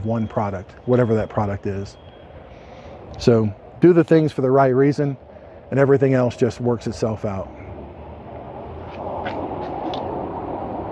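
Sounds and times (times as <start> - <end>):
speech: 0.0 - 2.1, 3.2 - 7.6
fighter jet roaring overhead: 7.4 - 10.8.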